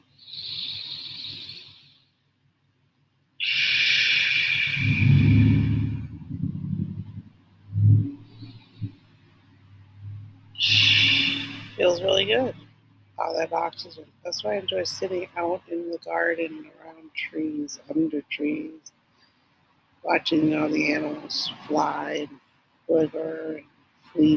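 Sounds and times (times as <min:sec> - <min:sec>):
slow deep breaths as a breathing exercise: 0:00.2 - 0:02.2, 0:03.4 - 0:07.1, 0:07.7 - 0:11.8
speech: 0:13.2 - 0:19.0, 0:20.0 - 0:24.3.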